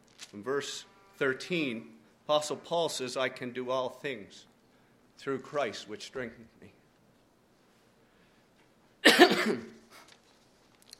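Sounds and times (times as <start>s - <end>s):
speech: 0.3s - 4.5s, 5.2s - 6.8s, 9.4s - 9.7s
single harsh cough: 9.0s - 10.0s.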